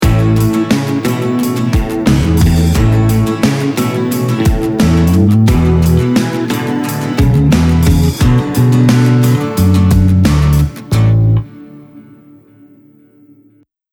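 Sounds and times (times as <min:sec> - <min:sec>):
two guitars playing: 0:00.0 - 0:13.2.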